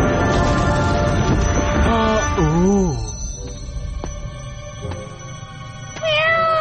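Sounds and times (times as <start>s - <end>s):
steady tonal background: 0.0s - 6.1s
cat meowing: 6.0s - 6.5s.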